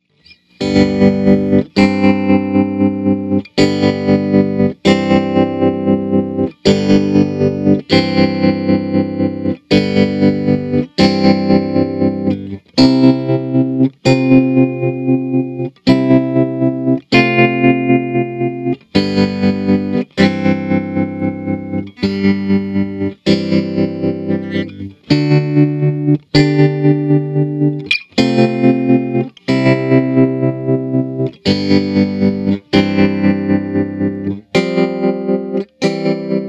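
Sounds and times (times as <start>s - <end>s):
medium chords: 0.6s - 36.4s.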